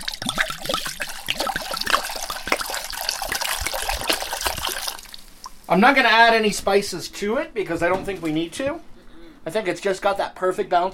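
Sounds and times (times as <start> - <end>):
liquid pouring into a pot: 0.0 - 5.6
speech: 5.7 - 10.9.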